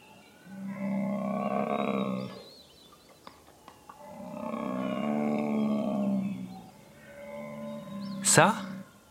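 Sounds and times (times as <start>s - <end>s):
bear roaring: 0.5s - 2.4s, 4.0s - 9.0s
speech: 8.4s - 8.6s.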